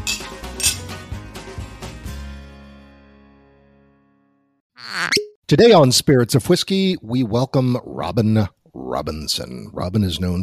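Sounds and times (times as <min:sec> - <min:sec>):
glasses clinking in a toast: 0:00.0 - 0:00.8
speech: 0:05.5 - 0:10.4.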